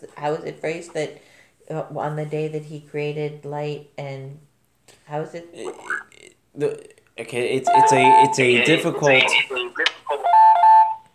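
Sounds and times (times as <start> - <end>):
speech: 0.0 - 4.5, 5.1 - 9.9
mobile phone ringtone for an incoming call: 7.7 - 9.4, 10.0 - 11.1.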